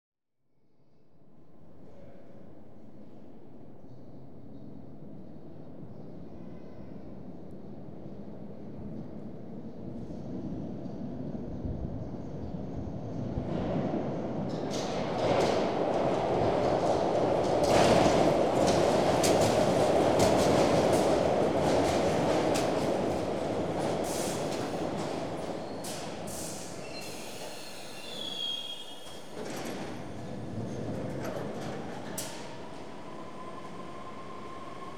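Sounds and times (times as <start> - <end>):
London Underground train: 0.6 - 34.9.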